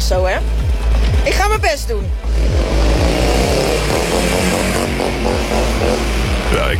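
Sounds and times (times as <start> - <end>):
speech: 0.1 - 2.9, 3.8 - 6.7
large motorcycle engine roaring and revving past a noise camera: 2.1 - 6.7.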